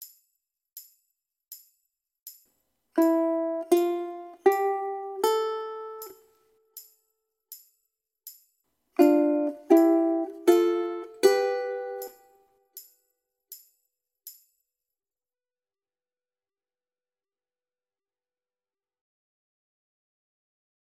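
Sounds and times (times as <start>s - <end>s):
ukulele single notes and pairs of notes: 3.0s - 6.2s, 9.0s - 12.4s.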